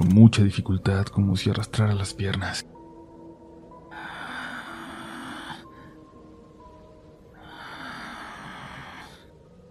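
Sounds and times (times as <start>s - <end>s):
speech: 0.1s - 2.8s
mother breathing slowly and heavily with rasping breaths: 3.7s - 9.5s.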